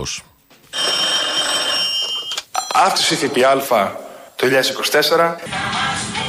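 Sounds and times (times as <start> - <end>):
speech: 0.0 - 0.3, 2.8 - 6.1
mobile phone ringtones of members of parliament ringing in the Senate hall: 0.7 - 2.5.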